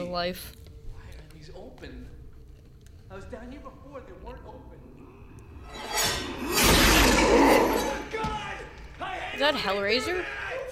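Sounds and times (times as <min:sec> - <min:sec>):
speech: 0:00.1 - 0:00.6, 0:01.4 - 0:02.2, 0:03.1 - 0:05.0, 0:09.4 - 0:10.4
glass shattering scare effect: 0:05.7 - 0:08.1.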